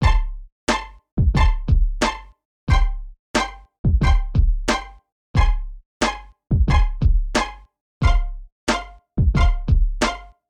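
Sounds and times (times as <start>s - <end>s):
beat with pizzicato strings: 0.0s - 10.4s.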